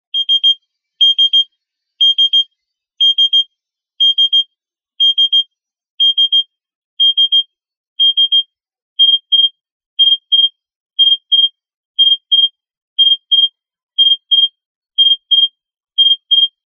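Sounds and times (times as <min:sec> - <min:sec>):
Morse code letter O: 0:00.1 - 0:01.4, 0:02.0 - 0:02.4, 0:03.0 - 0:03.4, 0:04.0 - 0:04.4, 0:05.0 - 0:05.4, 0:06.0 - 0:06.4, 0:07.0 - 0:07.4, 0:08.0 - 0:08.4, 0:09.0 - 0:16.6.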